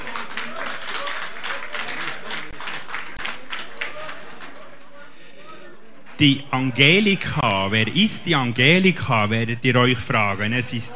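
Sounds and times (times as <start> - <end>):
crowd clapping: 0.0 - 5.0
speech: 6.2 - 10.9.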